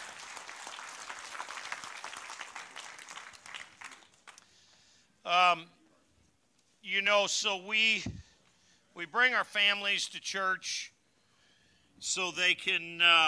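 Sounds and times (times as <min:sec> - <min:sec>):
large group applauding: 0:00.0 - 0:04.6
speech: 0:05.3 - 0:05.8, 0:06.8 - 0:08.2, 0:09.0 - 0:10.9, 0:12.0 - 0:13.2.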